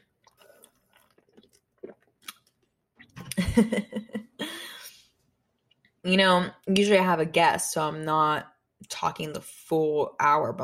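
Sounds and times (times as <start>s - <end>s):
person sipping soda: 0.0s - 3.2s
person gulping and swallowing soda: 0.0s - 3.4s
speech: 3.6s - 4.2s, 6.0s - 10.6s.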